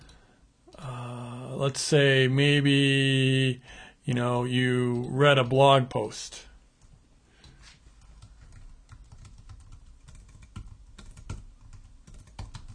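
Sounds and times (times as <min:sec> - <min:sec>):
speech: 0:01.6 - 0:06.5
typing on a computer keyboard: 0:06.8 - 0:12.7.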